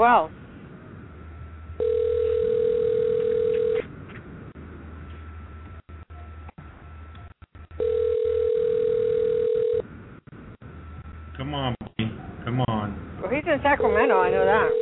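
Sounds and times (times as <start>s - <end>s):
speech: 0.0s - 0.4s
low hum: 0.0s - 14.7s
phone ringback tone from an outgoing call: 1.8s - 3.8s, 7.8s - 9.8s, 13.8s - 14.7s.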